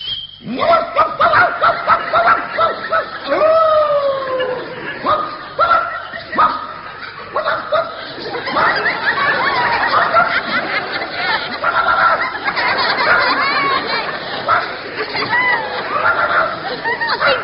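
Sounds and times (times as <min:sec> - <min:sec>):
speech: 0:00.4 - 0:03.5
man imitating a barking dog: 0:00.4 - 0:08.8, 0:11.6 - 0:12.3, 0:15.9 - 0:16.6
laughter: 0:00.7 - 0:17.4.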